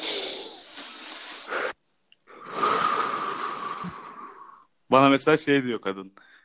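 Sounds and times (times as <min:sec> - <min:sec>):
deep breathing in and out: 0:00.0 - 0:04.8
speech: 0:04.9 - 0:06.3.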